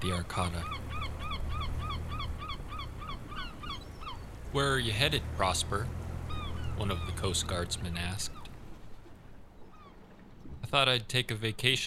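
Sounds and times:
speech: 0:00.0 - 0:00.9, 0:04.5 - 0:06.0, 0:06.8 - 0:08.4, 0:10.7 - 0:11.8
birds squawking above the water of the Harrow Strait: 0:00.0 - 0:08.7
low rumbling noise: 0:00.0 - 0:11.8.

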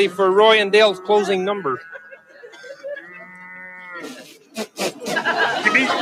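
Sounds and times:
speech: 0:00.0 - 0:02.0
cow mooing: 0:00.0 - 0:04.2
laughter: 0:01.1 - 0:03.4, 0:04.0 - 0:06.0.

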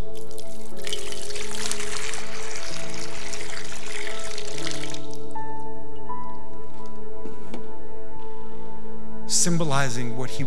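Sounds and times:
water poured into a basin with a splashing rush: 0:00.0 - 0:05.3
soft sustained music: 0:00.0 - 0:10.4
speech: 0:09.4 - 0:10.4.

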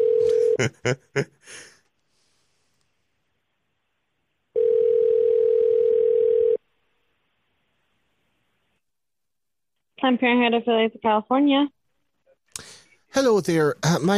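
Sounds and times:
telephone ringback tone while call connects: 0:00.0 - 0:00.6, 0:04.6 - 0:06.6
laughter: 0:00.3 - 0:01.6
speech: 0:00.6 - 0:01.7, 0:10.0 - 0:11.8, 0:12.6 - 0:14.1.

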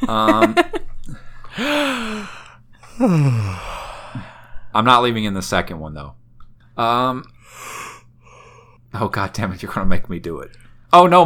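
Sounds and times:
speech: 0:00.0 - 0:00.8, 0:03.0 - 0:03.6, 0:04.8 - 0:06.2, 0:06.8 - 0:07.9, 0:08.9 - 0:11.2
laughter: 0:00.0 - 0:00.9
person yawning: 0:01.6 - 0:04.4.

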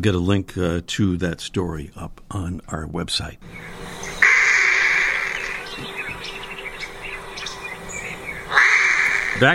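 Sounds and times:
speech: 0:00.0 - 0:03.8, 0:09.4 - 0:09.5
straw-headed bulbul warbling: 0:03.4 - 0:09.5.

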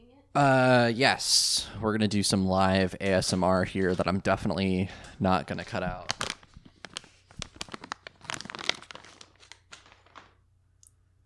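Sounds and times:
speech: 0:00.4 - 0:06.2
bag of crisps crinkling: 0:05.5 - 0:10.4.

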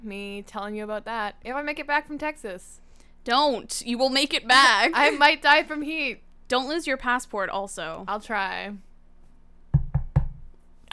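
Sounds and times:
speech: 0:00.0 - 0:08.9
knocking on a wooden surface: 0:09.7 - 0:10.5.

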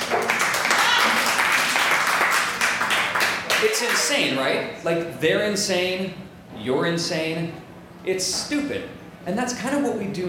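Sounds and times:
audience applause: 0:00.0 - 0:04.0
speech: 0:03.7 - 0:10.2.

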